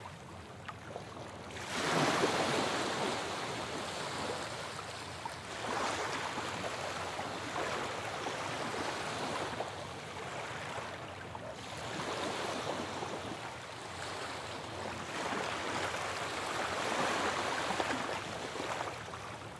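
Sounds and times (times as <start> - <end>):
ocean: 0.0 - 19.5.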